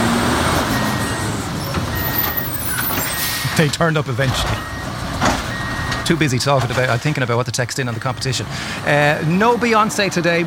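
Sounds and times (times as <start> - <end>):
lorry engine rumbling: 0.0 - 10.4
speech: 3.6 - 4.7, 6.1 - 10.4.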